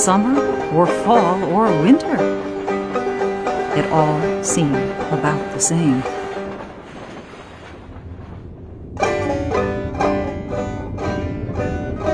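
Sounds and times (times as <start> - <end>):
speech: 0.0 - 2.6, 3.7 - 6.2
rhythmic pulsing clatter of a passing subway train: 0.0 - 12.1
subway train rumbling past: 0.0 - 12.1.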